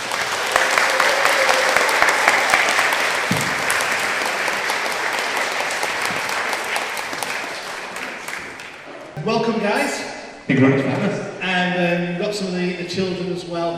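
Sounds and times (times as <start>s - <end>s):
sustained dense applause from a sizeable audience: 0.0s - 9.2s
speech: 9.5s - 11.2s, 12.3s - 13.7s.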